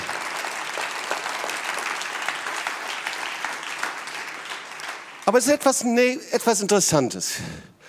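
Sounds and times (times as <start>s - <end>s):
church audience applauding during a sermon: 0.0s - 6.0s
speech: 5.3s - 7.7s.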